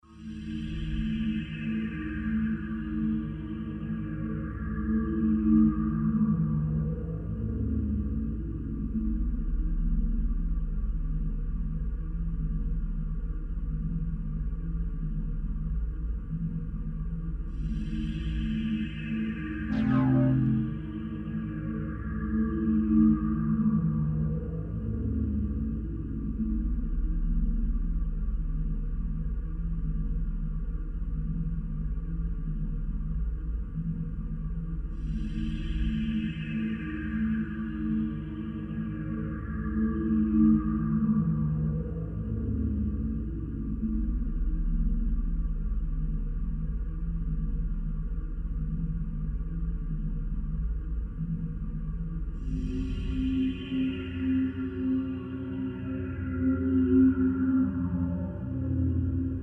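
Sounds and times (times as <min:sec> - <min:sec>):
ambience: 0:00.1 - 0:59.4.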